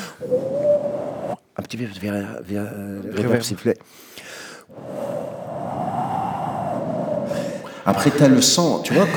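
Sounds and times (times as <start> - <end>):
voice imitating blowing wind as a sound effect: 0.0 - 1.6, 4.7 - 7.7
speech: 0.2 - 0.6, 1.7 - 4.1, 7.9 - 9.1.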